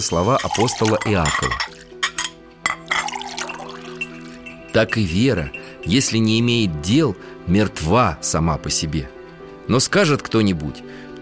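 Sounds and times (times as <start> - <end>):
speech: 0.0 - 1.9, 4.7 - 11.2
tea being poured: 0.0 - 2.0, 2.8 - 6.1
crockery clinking: 0.0 - 6.4.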